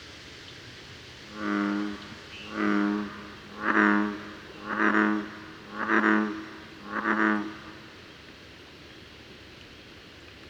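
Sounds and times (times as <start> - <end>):
American bullfrog croaking: 1.4 - 7.6.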